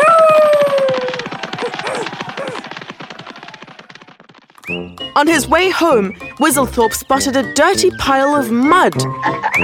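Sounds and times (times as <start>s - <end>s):
fast patter of running feet moving away: 0.0s - 7.6s
dog yelping while running away: 1.8s - 2.6s
speech: 5.2s - 9.6s.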